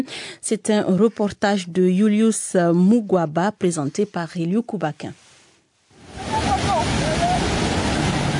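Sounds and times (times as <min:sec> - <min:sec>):
speech: 0:00.0 - 0:05.2
water wash from a boat on a calm lake: 0:06.0 - 0:08.3.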